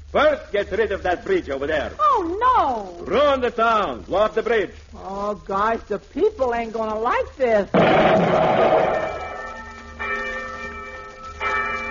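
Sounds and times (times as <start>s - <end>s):
speech: 0.1s - 9.1s
large bell tolling: 7.8s - 11.8s.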